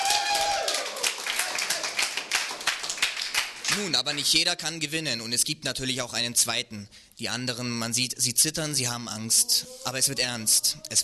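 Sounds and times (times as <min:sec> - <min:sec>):
crowd cheering for a woman placing third in a competition: 0:00.0 - 0:03.0
dense overlapping hand claps: 0:00.0 - 0:04.3
speech: 0:03.8 - 0:11.0.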